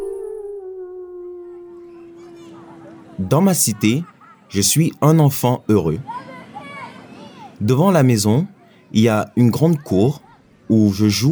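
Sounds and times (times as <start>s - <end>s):
wolf howling: 0.0s - 3.4s
laughter: 2.2s - 7.3s
speech: 3.2s - 6.3s, 7.6s - 11.3s.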